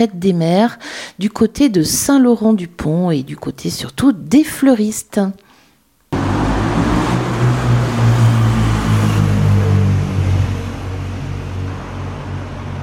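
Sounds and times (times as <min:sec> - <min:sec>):
speech: 0:00.0 - 0:05.4
street traffic with cars passing in a dense flow: 0:06.1 - 0:12.8.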